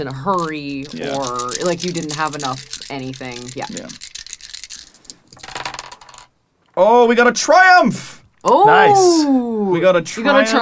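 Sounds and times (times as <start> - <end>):
speech: 0.0 - 4.1, 6.8 - 10.6
three dice clattering across a hard tabletop: 0.4 - 6.3.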